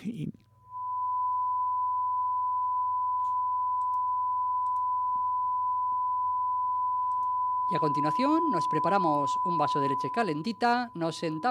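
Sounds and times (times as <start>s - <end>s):
faint low hum: 0.0s - 11.4s
speech: 7.7s - 11.4s
steady high-pitched television test card beep: 7.7s - 11.4s.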